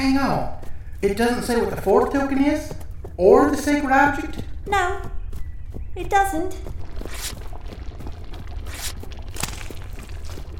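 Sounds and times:
speech: 0.0s - 5.2s, 6.0s - 7.3s
steady low churning: 6.2s - 10.5s
wet squelching and sloshing: 6.6s - 10.5s.

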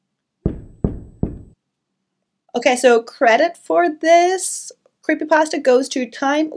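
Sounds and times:
heavy door knocker knocking: 0.5s - 1.6s
speech: 2.6s - 6.5s.

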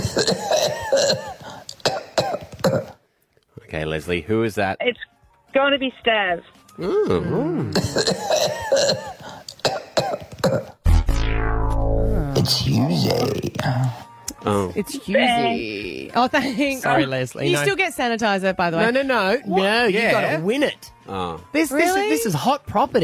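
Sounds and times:
person coughing: 0.0s - 3.0s, 7.6s - 10.8s
speech: 0.2s - 0.6s, 4.0s - 9.0s, 12.8s - 23.0s
loud ringing electronic hit: 10.8s - 12.3s
brief tonal sting: 10.8s - 12.4s.

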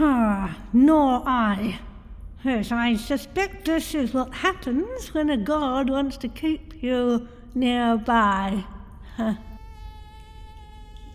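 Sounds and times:
speech: 0.0s - 9.5s
mosquito's thin high-pitched whine: 9.4s - 11.1s.

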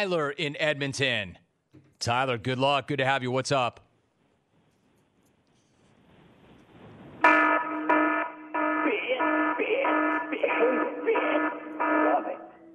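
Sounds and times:
speech: 0.0s - 1.4s, 2.0s - 3.8s
loud electronic alarm tone: 7.3s - 12.7s.

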